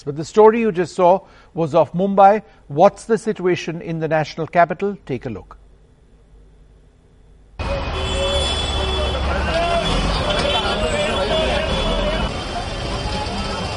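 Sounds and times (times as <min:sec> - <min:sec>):
speech: 0:00.0 - 0:05.6
traffic rumble: 0:05.6 - 0:13.7
dense hubbub of many voices of crowds waiting for metro trains and buses: 0:07.6 - 0:13.7
vehicle engines: 0:07.6 - 0:13.7.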